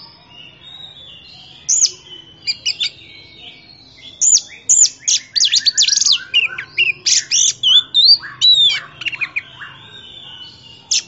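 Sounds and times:
oriental magpie-robin whistling song: 0:00.0 - 0:11.0.

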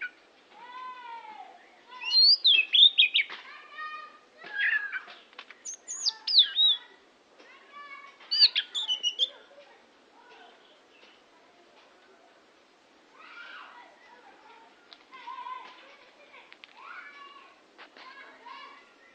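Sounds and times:
Oriental magpie-robin singing: 0:01.5 - 0:03.3, 0:04.4 - 0:07.0, 0:08.2 - 0:09.5.

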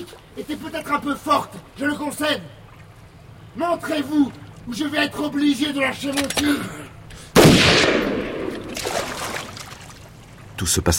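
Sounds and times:
speech: 0:00.0 - 0:02.6, 0:03.6 - 0:07.0, 0:10.6 - 0:10.9
single gunshot in a forest: 0:07.3 - 0:09.2.

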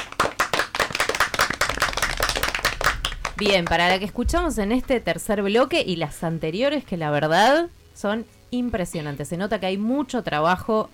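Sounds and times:
applause for stories written by students: 0:00.0 - 0:04.2
speech: 0:03.4 - 0:10.9.

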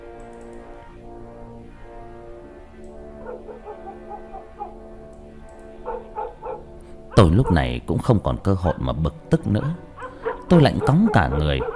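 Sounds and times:
dogs at a house across the way howling: 0:03.2 - 0:04.8, 0:05.8 - 0:07.7, 0:09.4 - 0:11.7
speech: 0:07.2 - 0:09.9, 0:10.5 - 0:11.7.

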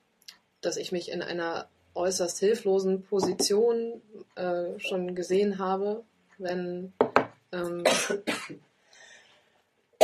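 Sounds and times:
speech: 0:00.6 - 0:08.7
person with a breaking voice coughing hoarsely: 0:07.8 - 0:08.6
faint breathy sound: 0:08.8 - 0:09.6.

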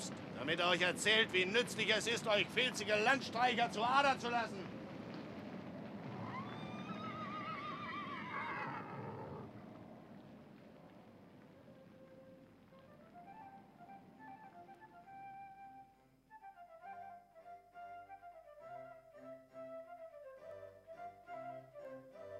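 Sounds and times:
speech: 0:00.1 - 0:04.8
horses from a small herd driven along a road neighing: 0:06.0 - 0:09.7.

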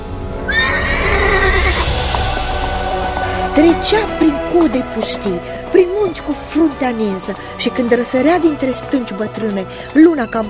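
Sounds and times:
horse neighing as a rider mounts and sets off: 0:00.5 - 0:05.1
speech: 0:03.6 - 0:10.4.

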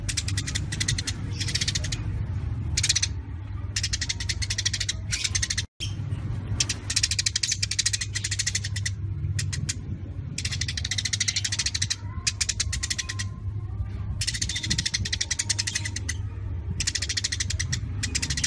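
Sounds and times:
Eurasian tree sparrow harsh chatter: 0:00.0 - 0:18.4
constant low-pitched hum: 0:00.0 - 0:18.4.

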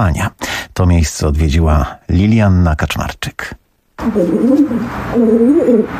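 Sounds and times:
soft hiss: 0:00.0 - 0:05.9
speech: 0:00.0 - 0:05.9
wood pigeons and collared doves cooing at a pigeon rescue and care center: 0:04.0 - 0:05.9.

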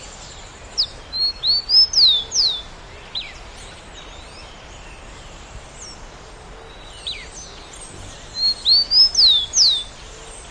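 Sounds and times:
steady background hiss: 0:00.0 - 0:10.5
bird song of clear high whistled notes: 0:00.8 - 0:03.4, 0:07.0 - 0:09.9.

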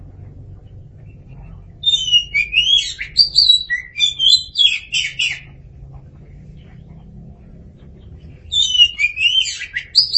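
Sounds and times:
faint low hum: 0:00.0 - 0:10.1
Oriental magpie-robin singing fluty whistles and slurred notes: 0:01.8 - 0:05.5, 0:08.5 - 0:10.1.

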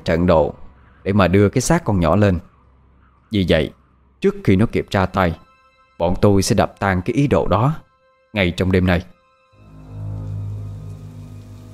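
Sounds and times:
speech: 0:00.0 - 0:02.5, 0:03.3 - 0:05.4, 0:06.0 - 0:07.8, 0:08.4 - 0:09.1
heavy rain pouring: 0:09.7 - 0:11.7.

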